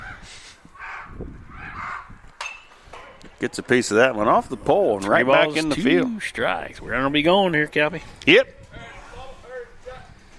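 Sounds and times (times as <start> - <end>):
crows cawing: 0.0 - 2.2
speech: 3.4 - 8.6.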